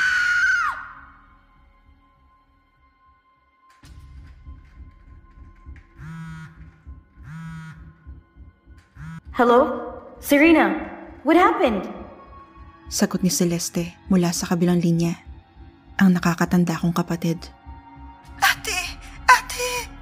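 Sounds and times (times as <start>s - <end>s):
woman screaming high-pitched: 0.0s - 1.1s
low rhythmic pulsing: 3.8s - 20.0s
short buzzing bursts: 9.0s - 9.3s
speech: 9.4s - 12.0s, 12.9s - 15.3s, 16.0s - 17.6s.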